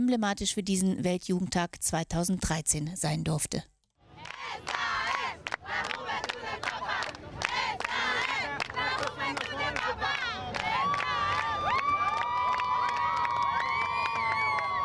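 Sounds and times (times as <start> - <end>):
speech: 0.1 - 3.7
large crowd chanting: 4.2 - 11.6
large crowd cheering: 4.2 - 14.8.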